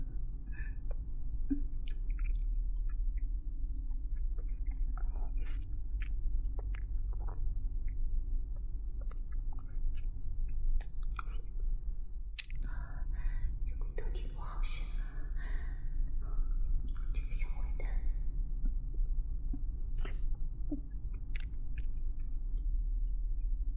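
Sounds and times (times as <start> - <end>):
low steady hum: 0.0 - 23.7
chewing fried chicken cutlet: 1.8 - 11.5, 18.7 - 22.4.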